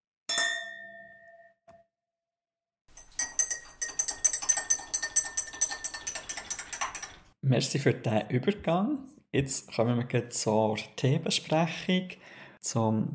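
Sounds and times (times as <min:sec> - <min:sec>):
two cups clinking in a toast: 0:02.9 - 0:07.3
speech: 0:07.5 - 0:13.1.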